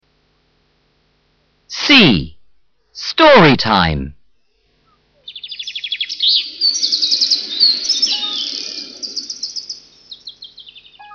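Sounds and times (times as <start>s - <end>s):
speech: 1.9s - 2.3s, 3.0s - 4.2s
birds chirping in a park: 4.9s - 11.1s.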